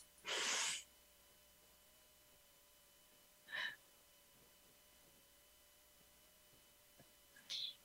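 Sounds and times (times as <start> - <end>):
deep breath in through nose and out through mouth during breathing exercise: 0.2 - 0.8, 3.5 - 3.8.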